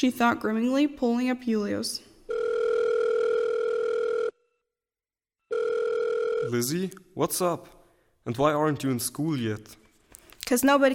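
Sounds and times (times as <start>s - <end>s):
speech: 0.0s - 2.1s, 6.4s - 9.8s, 10.5s - 10.9s
mobile phone call electronic ringback tone: 2.3s - 4.6s, 5.5s - 6.5s.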